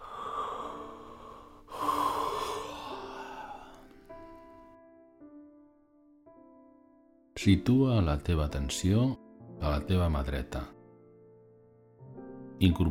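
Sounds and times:
person yawning: 0:00.0 - 0:04.0
speech: 0:07.4 - 0:10.8, 0:12.6 - 0:12.8.

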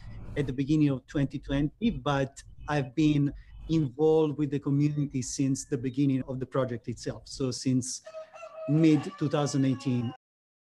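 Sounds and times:
speech: 0:00.4 - 0:10.2
rooster crowing: 0:08.0 - 0:10.2.

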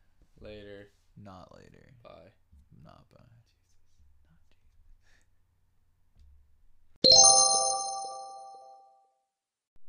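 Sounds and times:
speech: 0:00.4 - 0:03.4
car chime-like ring: 0:07.0 - 0:08.8.

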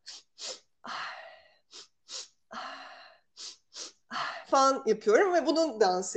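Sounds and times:
person breathing in a deliberate rhythmic pattern: 0:00.0 - 0:04.5
speech: 0:04.5 - 0:06.1.

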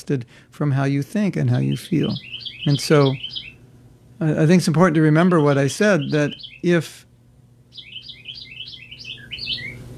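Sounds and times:
speech: 0:00.0 - 0:03.4, 0:04.2 - 0:07.0
low hum: 0:00.0 - 0:09.9
bird chirping: 0:01.5 - 0:03.6, 0:04.9 - 0:06.8, 0:07.7 - 0:09.9.

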